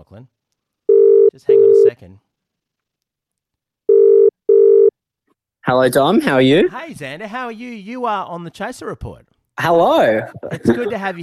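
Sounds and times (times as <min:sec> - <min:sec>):
speech: 0:00.1 - 0:00.4, 0:01.3 - 0:02.3, 0:05.7 - 0:11.2
outgoing phone call ringing tone: 0:00.9 - 0:01.9, 0:03.9 - 0:04.9
laughter: 0:09.9 - 0:11.2.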